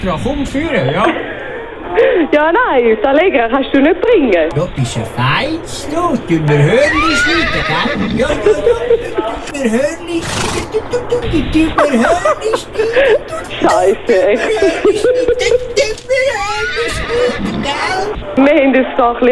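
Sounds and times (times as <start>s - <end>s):
speech: 0.0s - 19.3s
laughter: 0.6s - 2.4s, 6.6s - 18.8s
pony whinnying and neighing with grunts: 6.7s - 8.5s, 10.2s - 10.8s, 16.4s - 18.0s.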